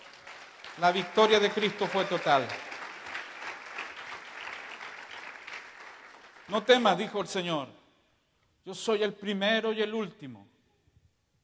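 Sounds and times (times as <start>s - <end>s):
audience clapping: 0.0s - 7.2s
speech: 0.8s - 2.7s, 6.5s - 7.8s, 8.6s - 10.5s.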